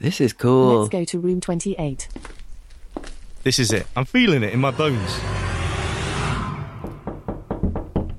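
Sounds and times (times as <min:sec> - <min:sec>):
speech: 0:00.0 - 0:02.4, 0:03.4 - 0:05.4
rushing burst of noise: 0:04.2 - 0:07.6
sharp knocks on a door: 0:07.0 - 0:08.1.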